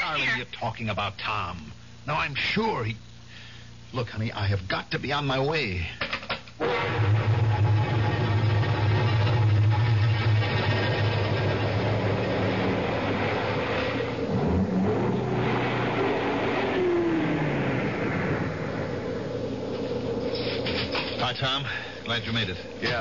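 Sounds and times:
speech: 0:00.2 - 0:03.1, 0:03.9 - 0:07.2, 0:21.4 - 0:23.0
car engine low steady drone while driving: 0:06.6 - 0:23.0
car road rumble: 0:07.1 - 0:23.0.

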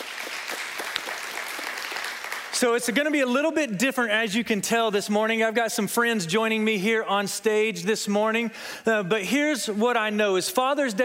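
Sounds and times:
crowd clapping steadily on Father's Day: 0:00.0 - 0:02.6
speech: 0:02.6 - 0:11.0.

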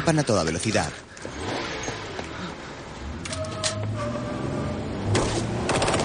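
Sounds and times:
speech: 0:00.0 - 0:01.5
dense continuous roar of noise: 0:00.0 - 0:06.0
police inspector firing a gun at people fleeing a harbour: 0:05.1 - 0:06.0.

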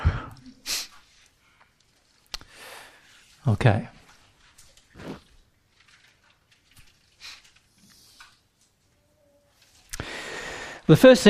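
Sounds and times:
speech: 0:03.4 - 0:04.0, 0:10.9 - 0:11.2
quick sniffs: 0:05.0 - 0:05.2
suppressed sneeze: 0:05.0 - 0:05.2.

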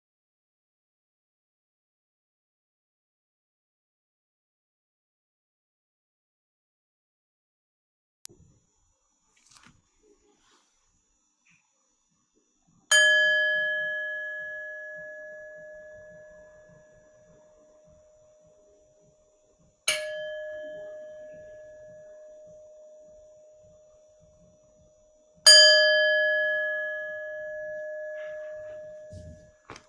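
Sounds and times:
meditation bell being struck: 0:12.9 - 0:19.0, 0:19.9 - 0:24.4, 0:25.4 - 0:29.6.

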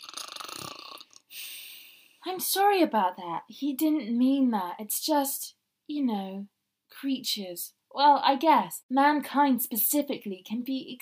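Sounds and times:
person imitating a snore: 0:00.0 - 0:01.2
speech: 0:02.2 - 0:11.0.

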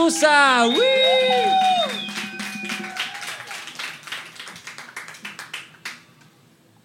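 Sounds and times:
speech: 0:00.0 - 0:02.0
audience applause: 0:00.0 - 0:06.0
high whistles and cheers: 0:00.5 - 0:03.9.

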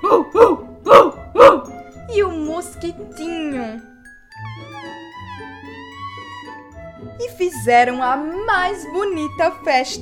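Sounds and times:
puppy barking in yappy bursts: 0:00.0 - 0:01.7
speech: 0:07.6 - 0:10.0.

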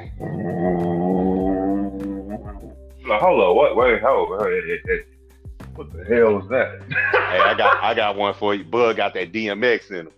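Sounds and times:
person imitating a Rottweiler's growl: 0:00.0 - 0:02.8
speech: 0:03.2 - 0:05.2, 0:05.8 - 0:10.1
laughter: 0:06.2 - 0:08.3.

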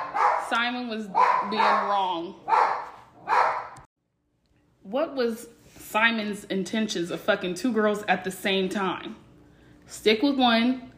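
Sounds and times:
dog barking: 0:00.0 - 0:03.9
speech: 0:00.5 - 0:02.7, 0:04.9 - 0:09.2, 0:09.9 - 0:10.9.

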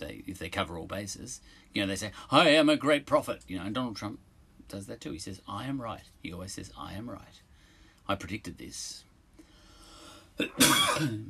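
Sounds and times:
speech: 0:00.5 - 0:07.5, 0:08.1 - 0:09.1, 0:10.4 - 0:11.2
harsh rasping cough with a throaty catch: 0:10.4 - 0:11.2.

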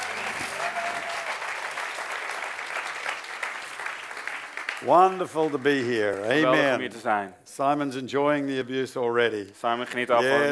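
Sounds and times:
audience applause for musicians after a performance: 0:00.0 - 0:06.4
speech: 0:04.8 - 0:10.5.

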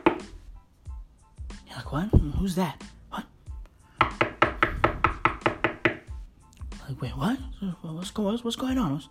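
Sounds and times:
sharp knocks on a door: 0:00.0 - 0:00.3, 0:04.0 - 0:06.2
speech: 0:01.8 - 0:03.3, 0:07.0 - 0:09.0.

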